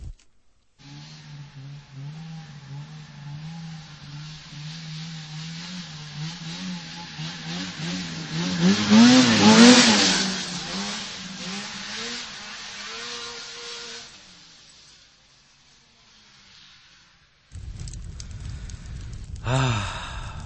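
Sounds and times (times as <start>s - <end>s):
old snowmobile engine revving: 0.8s - 16.9s.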